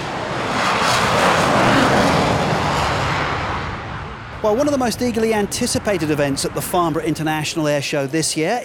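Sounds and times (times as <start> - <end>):
Typhoon fighter jet roaring past: 0.0 - 7.8
speech: 4.4 - 8.6.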